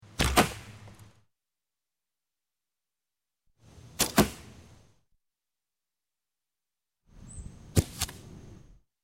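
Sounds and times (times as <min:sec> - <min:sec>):
archery arrow shot: 0:00.0 - 0:01.2, 0:03.7 - 0:04.8, 0:07.2 - 0:08.6.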